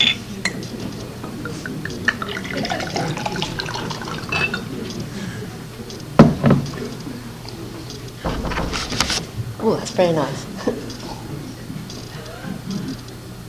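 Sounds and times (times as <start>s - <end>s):
laughter: 0.2s - 13.4s
water pouring into a glass: 2.1s - 4.8s
thud: 8.2s - 9.5s
knocks: 8.2s - 9.6s
speech: 9.8s - 10.5s.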